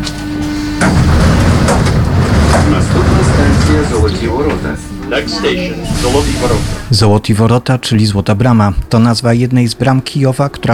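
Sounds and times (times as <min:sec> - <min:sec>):
metro train rumbling through an underground station in Ukraine: 0:00.0 - 0:07.0
underground metro station noise: 0:00.0 - 0:10.7
indistinct voices in a metro station: 0:02.4 - 0:08.2
speech: 0:04.2 - 0:10.7.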